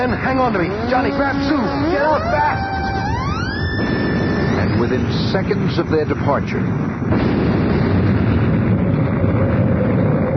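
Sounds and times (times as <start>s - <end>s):
speech: 0.0s - 2.7s, 3.8s - 4.1s, 4.8s - 7.7s
loud sustained explosion roaring with crackling debris: 2.8s - 10.3s.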